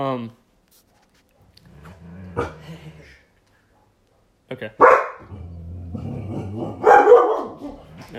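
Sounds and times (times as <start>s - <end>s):
dog barking with sharp loud yaps: 3.7s - 5.3s, 6.3s - 8.0s.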